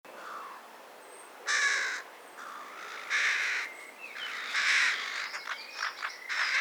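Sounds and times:
carrion crow Corvus corone giving harsh hoarse caws: 0.2 - 0.6, 1.5 - 6.5
small birds chirping: 2.4 - 6.5.

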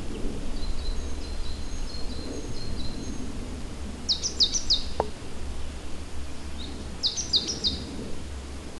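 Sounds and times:
constant low-pitched background hum: 0.0 - 8.7
great tit Parus major giving high notes and sharp downslurred chips: 0.4 - 3.3, 4.1 - 5.0, 6.3 - 7.9.

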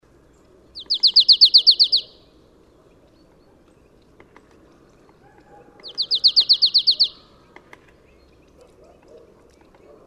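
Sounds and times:
Poecile palustris marsh tit calls: 0.8 - 2.3, 5.2 - 7.5.

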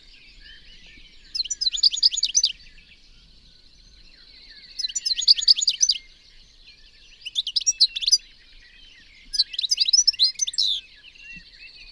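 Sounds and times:
European goldfinch twittering chirps: 0.2 - 2.7, 4.3 - 6.1, 9.2 - 10.8.

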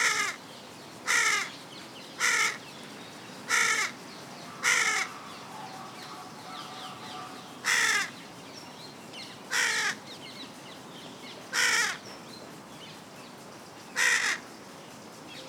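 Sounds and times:
carrion crow Corvus corone cawing: 0.0 - 0.4, 1.1 - 1.5, 2.2 - 2.6, 3.5 - 8.2, 9.5 - 10.0, 11.5 - 12.0, 14.0 - 14.4.

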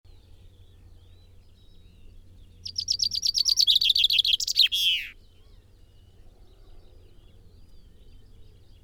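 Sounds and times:
common chaffinch Fringilla coelebs song with terminal flourish: 0.2 - 5.3.

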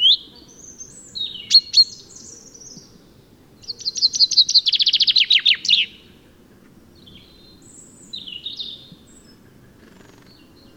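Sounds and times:
common chaffinch Fringilla coelebs singing: 0.0 - 10.7.

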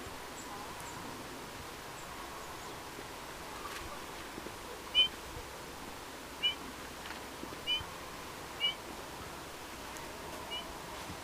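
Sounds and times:
steady low background hiss: 0.0 - 11.2
Eurasian bullfinch Pyrrhula pyrrhula giving soft short piping whistles: 4.9 - 5.2, 8.6 - 8.8, 10.5 - 10.7.

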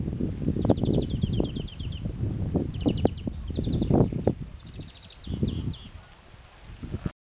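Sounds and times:
steady low rumbling wind: 0.0 - 7.1
European greenfinch Chloris chloris giving rapid twittering trills: 0.6 - 6.0.

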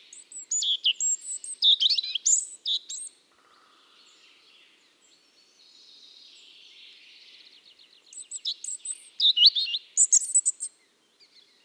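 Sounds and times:
European robin singing: 0.0 - 3.2, 8.0 - 11.6.

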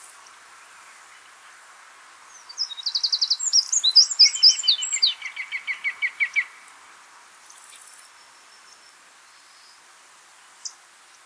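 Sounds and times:
Eurasian wren Troglodytes troglodytes singing: 2.5 - 6.6.

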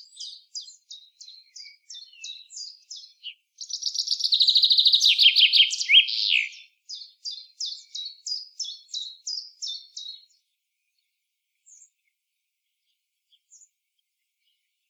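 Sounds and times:
common chaffinch Fringilla coelebs singing a descending trill: 0.0 - 10.4.

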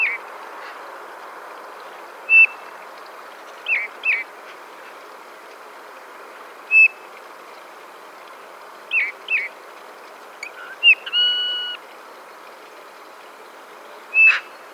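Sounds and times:
light background hiss: 0.0 - 14.7
Eurasian bullfinch Pyrrhula pyrrhula piping call: 6.7 - 7.0, 10.4 - 11.8, 14.1 - 14.6.

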